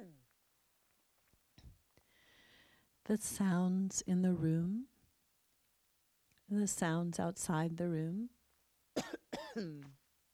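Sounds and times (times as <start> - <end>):
speech: 3.1 - 4.9, 6.5 - 8.4, 9.0 - 10.0
person coughing in a room: 9.0 - 9.9.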